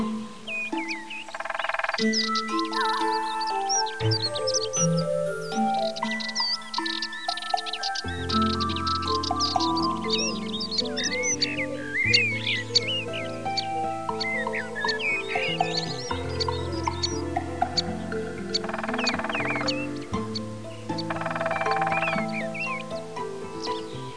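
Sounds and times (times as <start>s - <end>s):
ambience: 0.0s - 24.1s.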